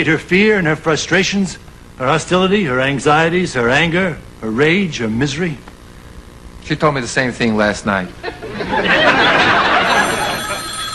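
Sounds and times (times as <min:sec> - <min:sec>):
speech: 0:00.0 - 0:05.7, 0:06.6 - 0:09.0
laughter: 0:08.0 - 0:10.8
telephone bell ringing with a bright trill: 0:08.9 - 0:10.9.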